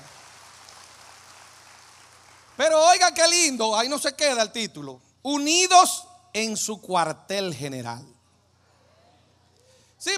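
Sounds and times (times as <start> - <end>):
audience applauding during a sermon: 0.0 - 2.6
speech: 2.6 - 8.1, 10.0 - 10.1.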